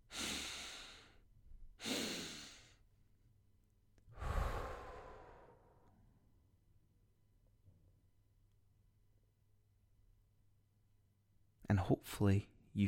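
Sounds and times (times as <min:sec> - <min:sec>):
person inhaling through nose and exhaling through mouth: 0:00.0 - 0:01.2, 0:01.8 - 0:02.8, 0:04.1 - 0:06.0
speech: 0:11.7 - 0:12.8.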